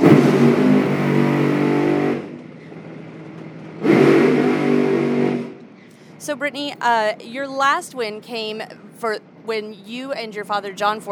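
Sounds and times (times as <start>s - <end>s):
drag racing car engines roaring and revving: 0.0s - 5.7s
speech: 6.3s - 11.0s.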